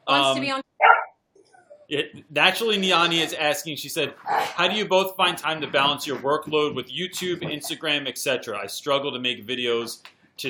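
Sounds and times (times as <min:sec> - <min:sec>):
speech: 0:00.1 - 0:00.7, 0:01.9 - 0:10.4
pet dog barking during a livestream: 0:00.8 - 0:01.1.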